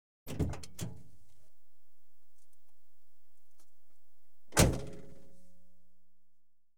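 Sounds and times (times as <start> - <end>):
car door opening and shutting heard from car interior: 0.3 - 2.8, 4.5 - 5.4.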